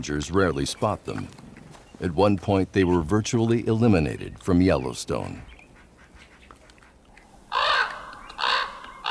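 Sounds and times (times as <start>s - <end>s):
speech: 0.0s - 1.4s, 2.0s - 5.5s
raven calling with harsh raspy croaks: 5.8s - 9.1s.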